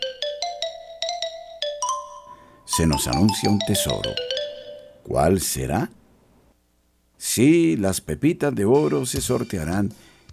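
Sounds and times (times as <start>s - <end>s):
marimba playing a quick rising run: 0.0s - 5.1s
speech: 2.8s - 4.3s, 5.1s - 6.0s, 7.2s - 10.1s.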